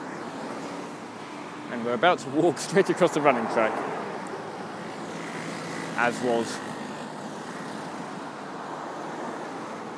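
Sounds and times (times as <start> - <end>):
dense road traffic engine and tyre noise: 0.0 - 9.9
speech: 1.7 - 4.1, 6.0 - 6.7.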